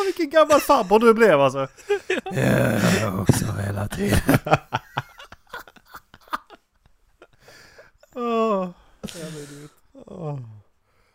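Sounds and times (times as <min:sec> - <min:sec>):
speech: 0:00.1 - 0:05.0, 0:08.2 - 0:10.6
laughter: 0:00.3 - 0:08.2
person sneezing: 0:09.0 - 0:09.7.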